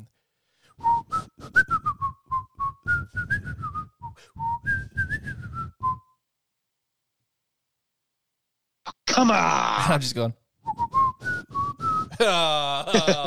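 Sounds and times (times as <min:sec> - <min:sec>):
person whistling a bright lively tune: 0:00.8 - 0:06.2, 0:10.7 - 0:12.2
speech: 0:09.2 - 0:10.4, 0:12.2 - 0:13.2
laughter: 0:12.1 - 0:13.2.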